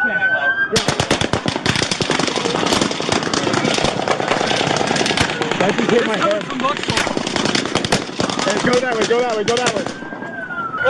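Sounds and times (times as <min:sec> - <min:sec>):
speech: 0:00.0 - 0:01.0, 0:05.6 - 0:07.0, 0:08.5 - 0:10.0
rapid bursts of gunfire from several different guns: 0:00.8 - 0:10.0.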